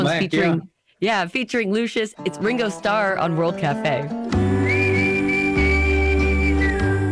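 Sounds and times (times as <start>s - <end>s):
speech: 0.0s - 4.5s
clear sustained whistled melody in a song: 4.6s - 7.1s.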